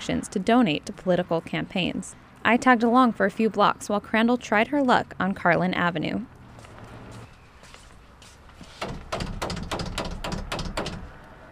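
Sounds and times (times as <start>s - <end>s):
outdoor noise: 0.0s - 11.5s
speech: 0.1s - 6.4s
campaign volunteer knocking on a house door: 8.8s - 11.1s.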